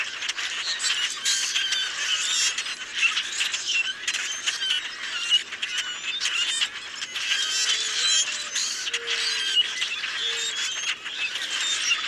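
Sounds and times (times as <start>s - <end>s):
common grackles rasping squawks and high squeaks: 0.0s - 12.0s.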